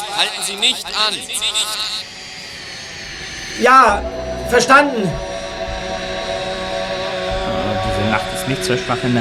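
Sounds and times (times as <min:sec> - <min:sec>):
police helicopter engine drone with whining tone: 0:00.0 - 0:09.1
speech: 0:00.2 - 0:02.1, 0:03.6 - 0:05.3, 0:08.1 - 0:09.1.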